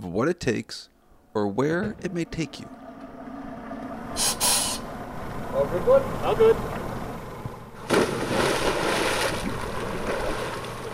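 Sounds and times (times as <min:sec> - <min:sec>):
speech: 0:00.0 - 0:02.8, 0:04.2 - 0:04.5, 0:05.6 - 0:06.8
wind around the boat: 0:00.0 - 0:10.9
water rushing around the boat: 0:01.6 - 0:10.9
diver splashing off a boat into the sea: 0:07.8 - 0:10.9.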